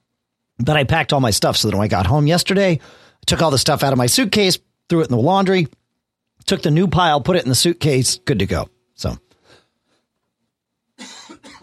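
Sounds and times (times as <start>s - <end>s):
speech: 0.6s - 5.8s, 6.4s - 9.2s
person coughing: 11.0s - 11.6s.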